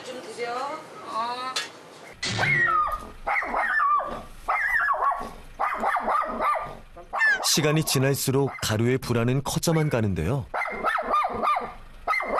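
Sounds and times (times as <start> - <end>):
dog barking and yelping in high-pitched bursts: 2.4 - 8.8, 10.5 - 12.3
speech: 7.6 - 10.6.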